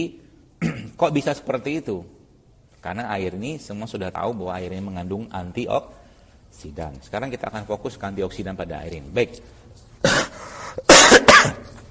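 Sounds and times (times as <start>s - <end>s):
speech: 0.0s - 0.2s, 1.0s - 2.2s, 2.8s - 11.6s
adult coughing: 0.6s - 1.0s, 10.0s - 11.8s.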